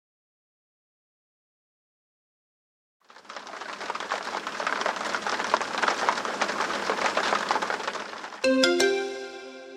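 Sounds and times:
steady dense rain on the wooden beams of a sukkah: 0:03.0 - 0:08.9
bright electronic tone: 0:08.4 - 0:09.7.

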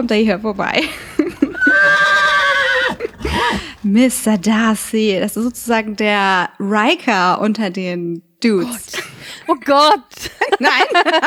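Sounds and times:
speech: 0:00.0 - 0:01.1, 0:03.4 - 0:11.2
laughter: 0:00.8 - 0:03.8, 0:10.2 - 0:11.2
horse whinnying: 0:01.3 - 0:03.9.

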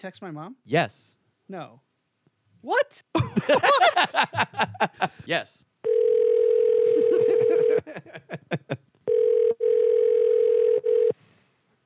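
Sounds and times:
speech: 0:00.0 - 0:01.9, 0:02.6 - 0:05.7, 0:06.9 - 0:08.8
laughter: 0:03.2 - 0:05.2, 0:06.8 - 0:08.8
outgoing phone call electronic tone: 0:05.8 - 0:07.8, 0:09.1 - 0:11.2.

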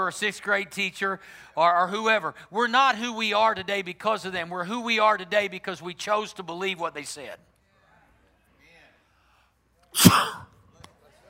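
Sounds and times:
speech: 0:00.0 - 0:07.5, 0:09.9 - 0:10.5
sneeze: 0:10.0 - 0:10.6.

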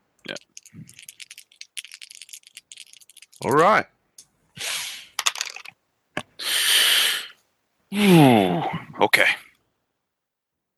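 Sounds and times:
dice rolled across a hard surface for a tabletop role-playing game: 0:00.3 - 0:03.7, 0:05.2 - 0:05.8
speech: 0:03.4 - 0:03.9, 0:07.9 - 0:09.4.

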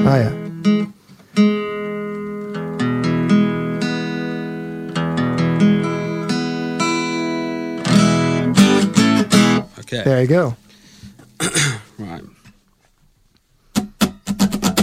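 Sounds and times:
guitar plucked and strummed while strings are retuned: 0:00.0 - 0:09.8, 0:13.7 - 0:14.8
speech: 0:00.1 - 0:01.5, 0:09.9 - 0:10.6.

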